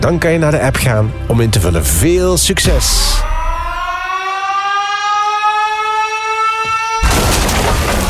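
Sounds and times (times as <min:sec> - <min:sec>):
speech: 0:00.0 - 0:03.4
siren effect for a bomb going off wailing upward in pitch: 0:02.6 - 0:08.0
loud noisy boom of a bomb going off: 0:07.0 - 0:08.0.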